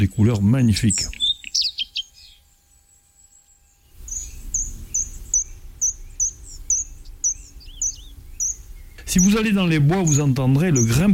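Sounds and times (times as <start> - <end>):
speech: 0.0 - 1.2, 9.2 - 11.1
common redstart singing: 0.0 - 11.1
low outdoor rumble: 0.0 - 11.1
common redstart call: 0.9 - 2.5, 3.2 - 11.1.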